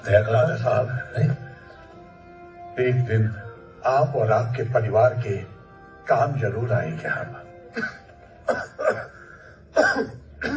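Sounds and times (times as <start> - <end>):
speech: 0.0 - 1.4, 2.8 - 5.5, 6.1 - 9.1
person coughing in harsh raspy bursts: 7.7 - 10.5.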